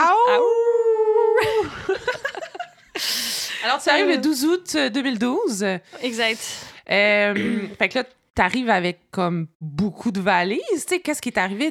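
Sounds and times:
person imitating a wolf howl: 0.0s - 1.6s
speech: 3.6s - 11.7s.

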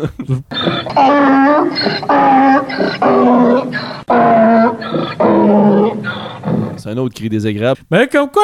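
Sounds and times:
speech: 0.0s - 4.0s, 6.8s - 8.4s
person imitating donkey bray: 0.5s - 6.8s.

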